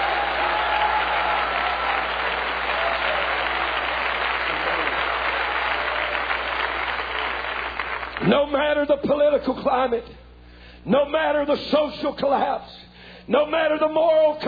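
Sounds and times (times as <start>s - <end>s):
audience shouting: 0.0s - 6.9s
audience applause: 0.0s - 8.3s
speech: 8.3s - 10.2s, 10.8s - 14.4s.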